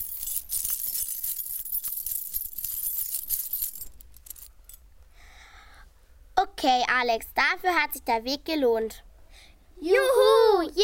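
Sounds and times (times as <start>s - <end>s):
heap of coins jingling in a treasure chest: 0.0s - 4.8s
speech: 6.6s - 9.1s, 9.8s - 10.8s.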